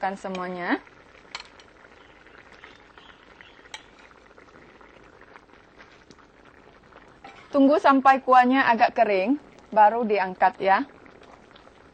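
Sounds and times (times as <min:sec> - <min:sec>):
speech: 0:00.0 - 0:01.0, 0:07.5 - 0:11.0
broth bubbling over medium heat: 0:00.0 - 0:11.9
utensil clicking on pot: 0:01.3 - 0:01.7.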